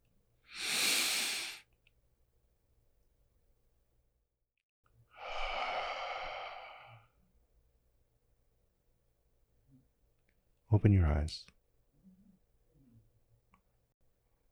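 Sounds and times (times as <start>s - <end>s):
slow quiet breathing in and out: 0.5s - 1.6s, 5.1s - 7.2s
speech: 10.8s - 11.6s.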